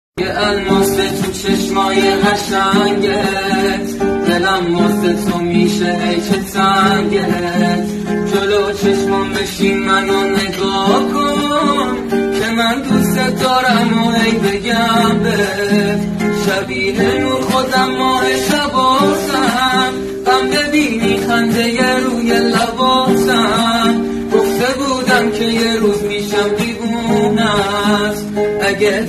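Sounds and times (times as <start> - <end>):
guitar: 0.2 - 29.0.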